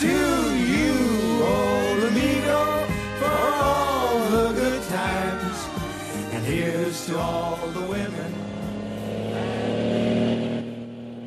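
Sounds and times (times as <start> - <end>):
large semi-trailer truck engine rumbling on a two-way street in California: 0.0 - 11.2.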